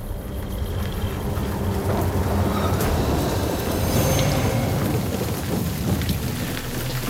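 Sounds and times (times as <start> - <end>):
deep low rumbling: 0.0 - 7.0
heavy rain pouring: 0.0 - 7.0.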